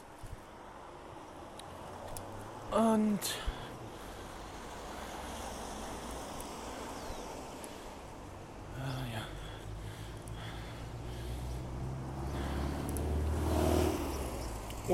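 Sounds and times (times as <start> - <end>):
road and wind noise: 0.0 - 14.9
speech: 2.7 - 3.5
old car engine rumbling by: 11.1 - 14.9.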